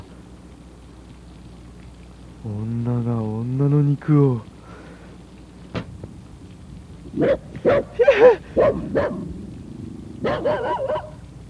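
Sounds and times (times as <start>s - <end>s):
speech: 2.4s - 4.5s
dog barking: 7.2s - 9.3s, 10.2s - 11.2s.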